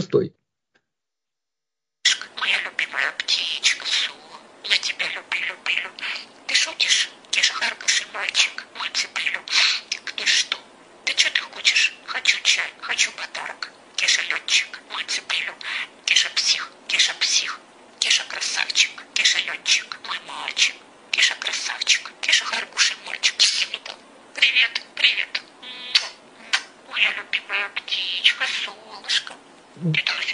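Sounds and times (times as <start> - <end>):
budgerigar chirps and squawks: 2.0 - 30.3
budgerigar mimicking a woman's voice: 2.1 - 30.3.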